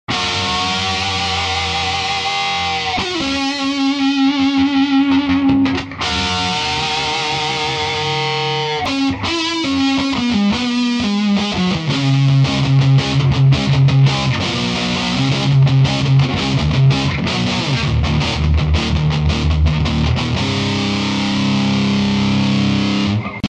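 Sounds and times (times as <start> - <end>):
guitar amplifier with double gain distortion: 0.0 - 23.4.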